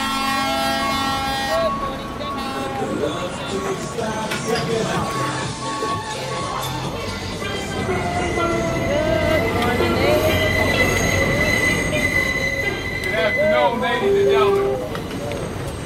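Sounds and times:
New York subway Q train rumbling roar: 0.0s - 15.8s
people talking: 1.4s - 15.7s
New York subway Q train wheels squealing: 7.9s - 15.8s.

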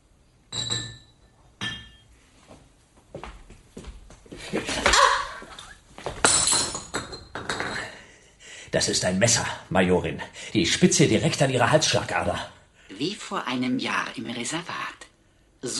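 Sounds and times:
glass clinking as Scotch whisky is served: 0.5s - 2.1s, 6.2s - 8.0s
glassware and dishes clattering: 0.5s - 2.1s, 6.2s - 8.0s
speech: 8.7s - 14.9s.

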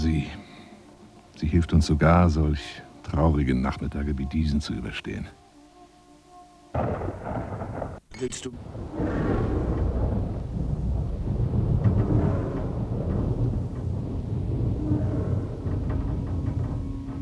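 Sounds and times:
speech: 0.0s - 0.4s, 1.4s - 5.4s, 6.8s - 7.5s, 8.2s - 9.4s
deep rolling thunder rumbles: 0.0s - 5.4s, 6.7s - 17.2s
steady rain: 0.0s - 17.2s.

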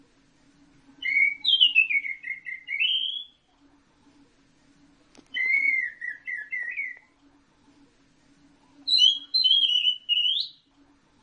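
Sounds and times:
faint hum: 0.0s - 11.2s
Orange-headed thrush warbled whistled phrases: 1.0s - 3.4s, 5.3s - 7.1s, 8.8s - 10.7s.

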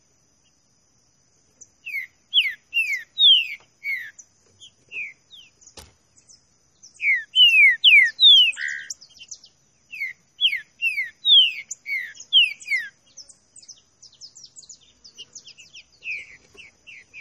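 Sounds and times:
soft high chirps: 1.7s - 17.1s
green-winged saltator singing clear downslurred whistles: 1.9s - 4.1s, 7.0s - 9.0s, 9.9s - 12.9s.

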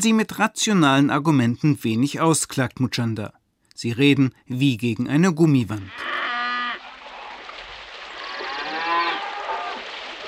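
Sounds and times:
speech: 0.0s - 6.3s
cattle mooing: 5.9s - 6.8s, 8.2s - 9.8s.

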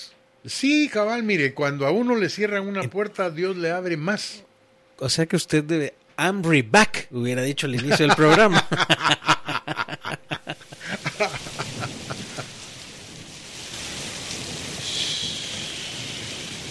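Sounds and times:
speech: 0.0s - 9.3s
laughter: 7.6s - 12.6s
rain falling: 10.5s - 16.6s.

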